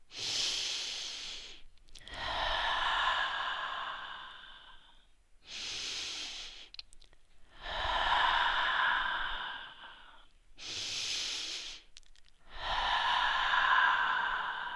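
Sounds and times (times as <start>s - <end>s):
deep slow breathing in and out: 0.1s - 6.8s, 7.4s - 14.7s.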